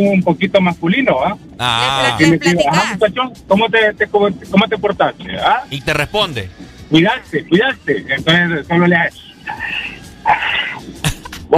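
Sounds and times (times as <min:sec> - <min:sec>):
speech: 0:00.0 - 0:11.5
laughter: 0:01.6 - 0:03.0
person imitating a dog panting with its tongue out: 0:01.6 - 0:03.0.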